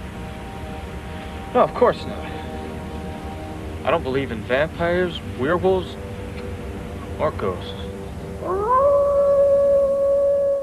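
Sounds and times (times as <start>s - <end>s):
speech: 1.5s - 2.4s, 3.9s - 6.0s, 7.2s - 7.8s
wolf howling: 8.4s - 10.6s.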